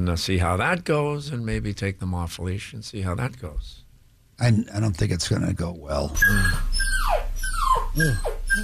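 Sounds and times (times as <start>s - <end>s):
speech: 0.0s - 3.8s, 4.4s - 6.9s, 8.0s - 8.6s
young puppy whimpering: 6.1s - 8.6s.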